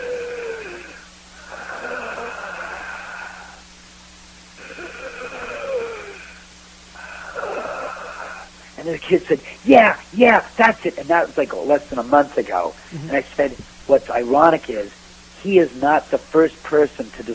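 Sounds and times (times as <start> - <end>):
voice imitating heavy labored breathing: 0.0 - 3.7, 4.6 - 8.8
steady low hum: 0.0 - 17.3
speech: 8.8 - 17.3.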